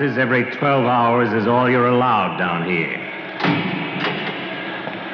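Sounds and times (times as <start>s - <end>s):
speech: 0.0s - 3.6s
heavy iron cage door clanking shut in a small prison jail room: 3.4s - 4.6s.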